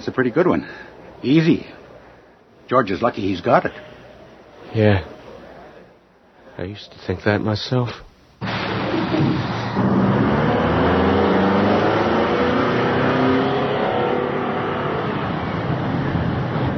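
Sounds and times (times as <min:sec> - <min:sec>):
speech: 0:00.0 - 0:01.8, 0:02.7 - 0:03.9, 0:04.7 - 0:05.1, 0:06.6 - 0:08.1
heavy bus engine revving up and accelerating: 0:08.5 - 0:16.7.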